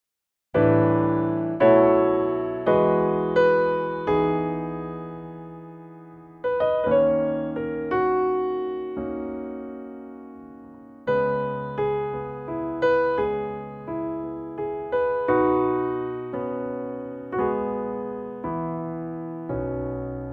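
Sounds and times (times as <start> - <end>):
piano playing: 0.6 - 20.3.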